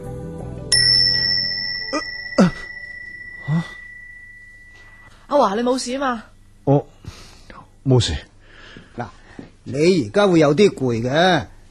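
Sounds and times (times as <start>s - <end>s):
single bright bell ringing: 0.7s - 5.9s
speech: 5.4s - 6.9s, 7.9s - 8.3s, 9.0s - 11.5s.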